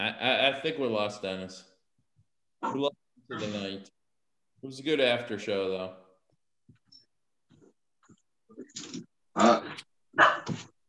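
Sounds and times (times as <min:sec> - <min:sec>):
speech: 0:00.0 - 0:01.7, 0:02.6 - 0:04.0, 0:04.6 - 0:06.0, 0:08.6 - 0:10.7
dog giving rough gruff barks: 0:10.2 - 0:10.6.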